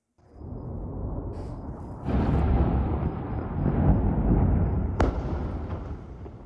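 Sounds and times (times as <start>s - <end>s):
rumbling explosions: 0.2s - 6.4s
loud explosion boom: 0.4s - 6.4s
sharp explosion crack: 5.0s - 6.4s.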